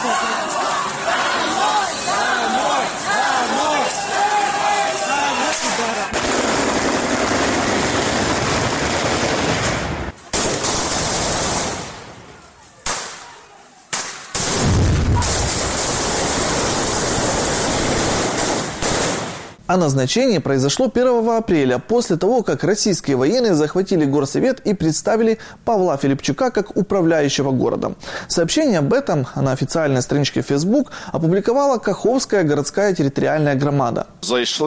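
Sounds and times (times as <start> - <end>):
large crowd of protesters chanting and shouting at a rally in Kakhovka Ukraine: 0.0 - 6.2
heavy grenade blasts from soldiers dispersing a protest: 5.5 - 19.6
loud gunfire from soldiers dispersing a protest: 5.6 - 12.2, 12.8 - 19.6
speech: 19.7 - 34.6.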